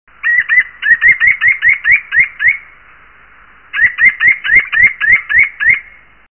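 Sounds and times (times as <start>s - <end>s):
Athene noctua calling: 0.2s - 2.8s, 3.7s - 6.1s.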